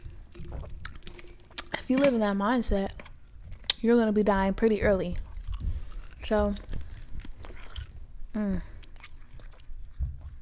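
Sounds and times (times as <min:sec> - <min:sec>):
ice being chewed with crisp crunchy bites: 0:00.0 - 0:01.9, 0:05.0 - 0:08.0, 0:08.7 - 0:10.3
speech: 0:01.9 - 0:03.0, 0:03.8 - 0:05.2, 0:06.2 - 0:06.7, 0:08.4 - 0:08.7.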